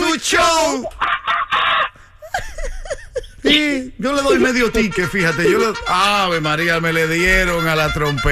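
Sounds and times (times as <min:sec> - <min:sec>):
speech: 0:00.2 - 0:01.1, 0:03.5 - 0:08.3
laughter: 0:00.7 - 0:06.5
mimicked monkey screeches and chicken clucks: 0:00.8 - 0:02.3.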